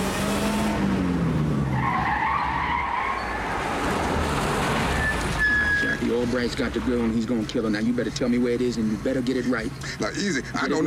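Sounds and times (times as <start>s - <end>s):
car engine roaring: 0.0s - 10.8s
road noise: 0.0s - 10.8s
tires skidding and squealing as car speeds away: 1.6s - 6.2s
speech: 6.3s - 10.8s.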